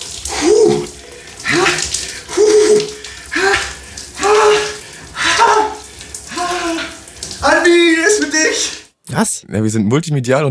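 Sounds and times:
cold shower water pouring: 0.0s - 9.0s
person gasping and groaning under a cold shower: 0.3s - 7.1s
speech: 9.2s - 10.4s.

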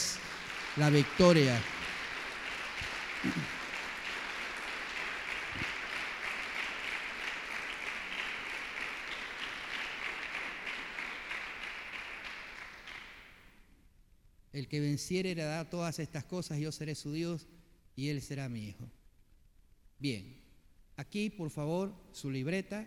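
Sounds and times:
church audience applauding: 0.0s - 13.4s
speech: 0.8s - 1.7s, 3.2s - 3.6s, 14.7s - 19.0s, 20.0s - 20.4s, 21.0s - 22.8s.

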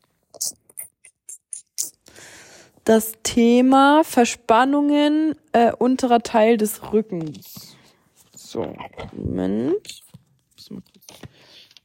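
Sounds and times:
speech: 2.9s - 7.5s, 8.5s - 10.0s, 10.7s - 11.2s
pages of a thick book flipped, crisp paper rustling: 6.8s - 11.8s.

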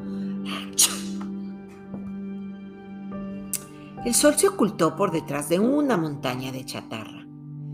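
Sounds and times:
dog sneezing: 0.8s - 1.3s
speech: 4.0s - 7.1s.

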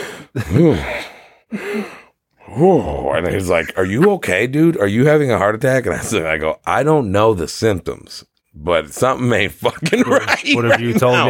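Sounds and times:
person imitating heavy breathing: 0.0s - 3.8s
speech: 0.3s - 0.9s, 2.6s - 11.2s
laughter: 3.4s - 4.2s, 9.6s - 11.2s.

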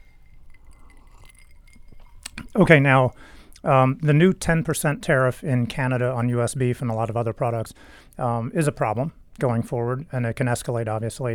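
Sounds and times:
glasses clinking in a toast: 0.0s - 3.2s
speech: 2.6s - 11.3s.

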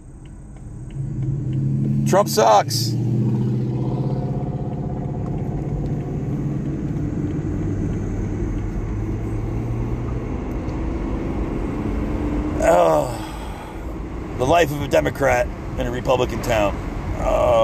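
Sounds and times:
car engine rumble in road traffic: 0.0s - 17.6s
speech: 2.1s - 3.0s, 14.6s - 17.6s.

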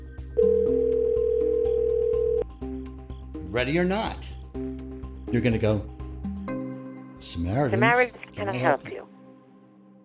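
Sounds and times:
electronic telephone ring tone: 0.4s - 2.5s
speech: 3.6s - 4.3s, 5.3s - 5.9s, 7.2s - 9.0s.

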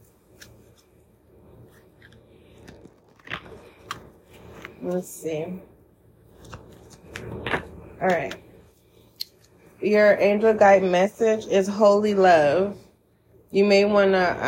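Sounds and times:
deck of oracle cards being shuffled: 0.3s - 1.0s, 1.6s - 5.0s, 6.3s - 8.5s
speech: 4.8s - 5.7s, 8.0s - 8.4s, 9.8s - 12.8s, 13.5s - 14.4s.

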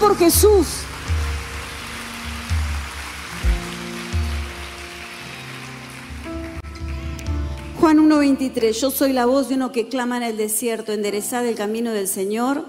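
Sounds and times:
speech: 0.0s - 0.9s, 7.8s - 12.6s
audience applause: 0.0s - 7.7s.

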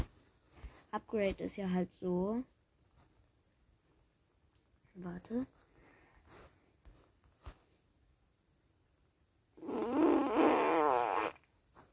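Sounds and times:
faint rustles and taps: 0.0s - 2.0s, 2.8s - 4.0s, 4.6s - 7.9s, 11.5s - 11.9s
speech: 0.9s - 2.6s, 5.0s - 5.6s
loud drawn-out fart: 9.6s - 11.5s.

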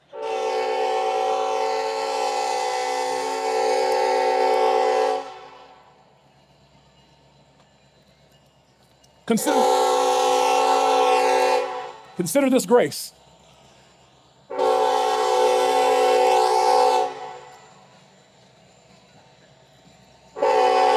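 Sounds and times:
low rumbling of passing train: 0.0s - 20.9s
passing train horn blaring: 0.1s - 5.9s, 9.4s - 12.2s, 14.5s - 17.6s, 20.4s - 20.9s
speech: 9.3s - 9.8s, 12.2s - 13.2s.

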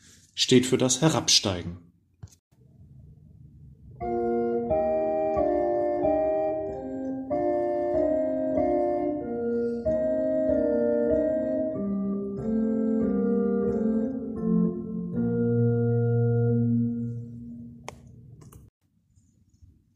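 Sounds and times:
speech: 0.4s - 1.9s
keyboard left-hand part playing a descending line of low notes: 4.0s - 17.9s.

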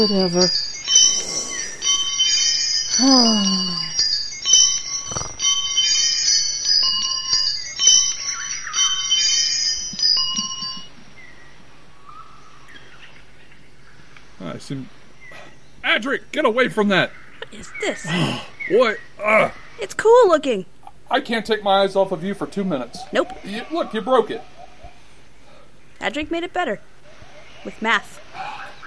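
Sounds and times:
speech: 0.0s - 0.8s, 3.0s - 3.9s, 14.7s - 15.0s, 16.0s - 24.6s, 26.0s - 26.9s, 27.6s - 28.6s
wind chimes jangling: 0.0s - 11.2s.

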